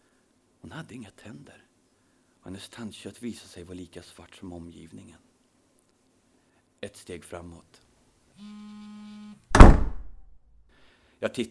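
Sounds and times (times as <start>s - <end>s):
speech: 0.6s - 1.7s, 2.4s - 5.3s, 6.8s - 7.8s, 8.4s - 9.1s, 11.2s - 11.4s
heavy door slamming shut: 9.5s - 10.2s.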